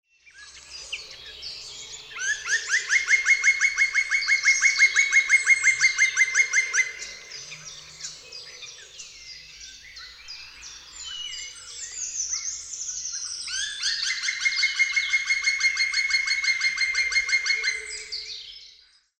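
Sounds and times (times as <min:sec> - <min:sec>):
black woodpecker: 0:00.6 - 0:09.4, 0:13.5 - 0:18.3.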